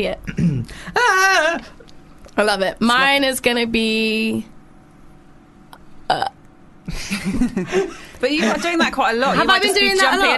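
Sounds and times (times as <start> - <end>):
speech: 0.0 - 1.8, 2.4 - 4.5, 6.1 - 6.3, 6.9 - 10.3
short loud burp used as a quiz buzzer: 6.1 - 6.4
laughter: 6.9 - 10.3.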